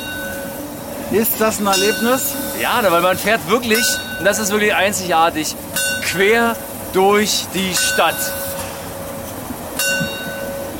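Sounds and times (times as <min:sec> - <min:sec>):
narrow-gauge steam train bell ringing: 0:00.0 - 0:10.7
speech: 0:01.1 - 0:08.4.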